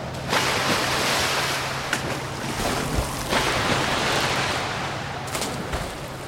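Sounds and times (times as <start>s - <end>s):
sea waves rushing: 0.0s - 6.2s
wind: 0.0s - 6.2s.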